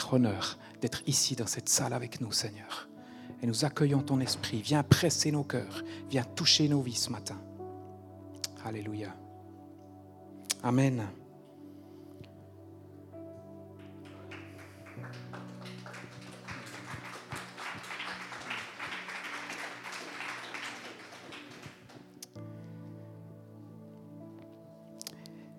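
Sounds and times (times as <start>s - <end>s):
speech: 0.1s - 7.5s, 8.6s - 9.2s, 10.6s - 11.2s
sustained keyboard chords: 2.6s - 25.5s
crowd applauding: 13.8s - 22.4s.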